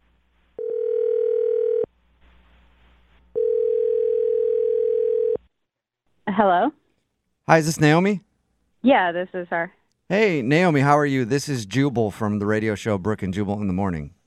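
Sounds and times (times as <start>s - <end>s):
long steady telephone ringing tones: 0.6s - 1.9s, 3.4s - 5.4s
speech: 6.4s - 6.8s, 7.5s - 8.3s, 8.8s - 14.2s.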